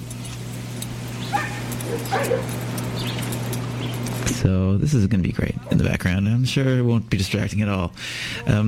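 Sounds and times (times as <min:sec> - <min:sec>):
steady low electrical hum: 0:00.0 - 0:08.6
several dogs barking and yipping: 0:00.3 - 0:04.2
speech: 0:01.9 - 0:03.1, 0:04.4 - 0:08.6.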